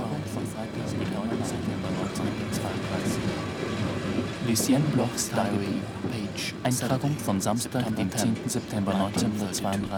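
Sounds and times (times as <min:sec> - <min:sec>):
train moving slowly at night through water: 0:00.0 - 0:09.9
speech: 0:04.5 - 0:09.9.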